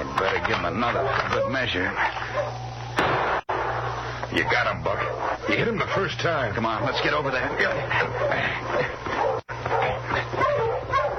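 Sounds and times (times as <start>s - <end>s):
steady low hum: 0.0s - 11.1s
speech: 0.5s - 2.6s, 4.3s - 8.9s
dog barking and yipping excitedly: 0.7s - 2.7s, 4.4s - 11.1s.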